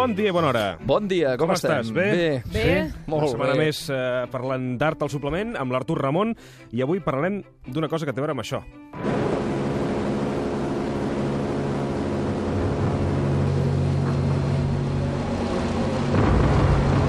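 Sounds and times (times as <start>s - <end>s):
speech: 0.0s - 9.1s
heavy propeller bomber aircraft engines droning during air raid: 9.0s - 16.2s.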